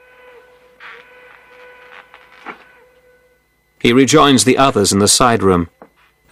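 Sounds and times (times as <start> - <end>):
train whistle: 0.0 - 3.5
speech: 3.8 - 5.8.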